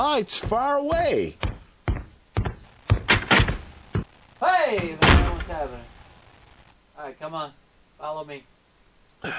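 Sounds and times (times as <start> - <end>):
speech: 0.0 - 1.5, 4.4 - 5.9, 7.0 - 8.5
knocking on a door: 0.4 - 4.1.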